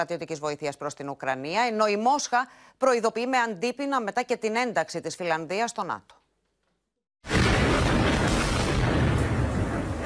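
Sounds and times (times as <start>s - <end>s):
speech: 0.0s - 6.2s
Russian artillery shelling in eastern Ukraine: 7.3s - 10.0s.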